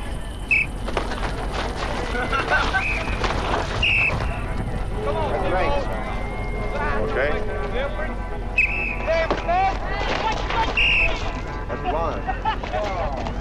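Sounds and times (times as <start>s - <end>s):
whistle blasts signalling a sparring bout: 0.0s - 0.8s, 2.7s - 4.6s, 5.8s - 7.1s, 8.4s - 9.5s, 10.6s - 11.5s
wind noise: 0.0s - 8.4s
voices: 0.0s - 13.3s
laughter: 1.8s - 3.7s, 9.9s - 13.3s.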